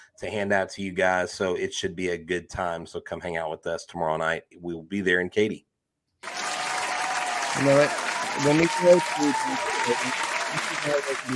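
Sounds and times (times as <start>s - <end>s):
speech: 0.2s - 6.4s, 7.6s - 11.3s
people clapping: 6.2s - 11.3s.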